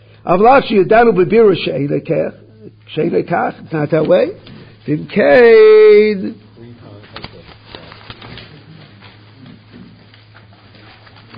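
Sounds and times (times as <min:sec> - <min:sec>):
steady low hum: 0:00.0 - 0:11.3
speech: 0:00.2 - 0:06.4
paper rustling: 0:06.8 - 0:11.3.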